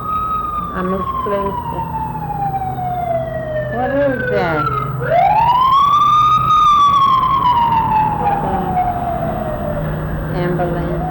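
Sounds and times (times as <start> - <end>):
emergency vehicle siren wailing: 0.0 - 11.0
road traffic rumble: 0.0 - 11.0
speech: 0.8 - 2.0, 3.7 - 5.5.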